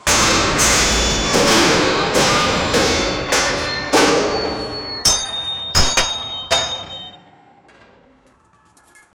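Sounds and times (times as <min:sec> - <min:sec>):
heavy metallic collision: 0:00.0 - 0:07.2.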